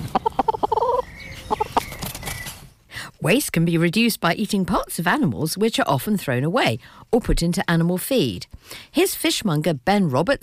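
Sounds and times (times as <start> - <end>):
chickens clucking at allotments: 0.0 - 2.6
speech: 3.2 - 10.4.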